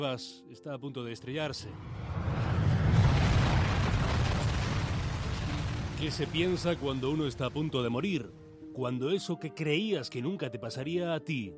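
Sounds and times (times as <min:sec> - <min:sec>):
speech: 0:00.0 - 0:02.5, 0:06.0 - 0:11.5
huge deep explosion with heavy low-end rumble: 0:01.6 - 0:08.4.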